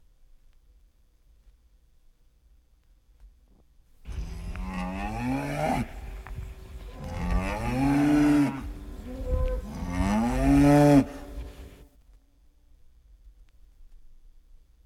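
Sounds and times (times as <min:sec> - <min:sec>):
cows mooing: 0:04.1 - 0:11.4.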